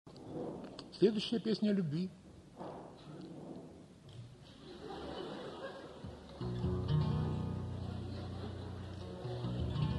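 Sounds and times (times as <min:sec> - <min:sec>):
deep rolling rumble of thunder: 0:00.2 - 0:01.0, 0:02.6 - 0:04.0
speech: 0:00.9 - 0:02.2
murmuring chuckling concert audience: 0:04.3 - 0:09.9
loud instrumental music passage: 0:06.4 - 0:09.9.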